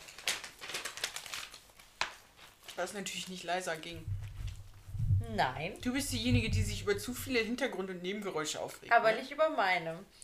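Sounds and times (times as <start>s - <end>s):
paper pages being flipped: 0.0s - 4.9s
speech: 2.8s - 4.2s, 5.2s - 10.2s.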